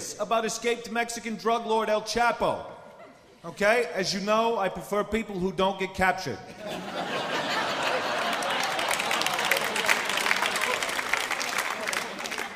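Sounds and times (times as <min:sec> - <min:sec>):
speech: 0:00.2 - 0:02.8, 0:03.4 - 0:07.1
audience laughter: 0:02.9 - 0:03.8, 0:06.5 - 0:12.5
crowd noise: 0:06.6 - 0:12.5
applause from a large audience: 0:07.2 - 0:12.5.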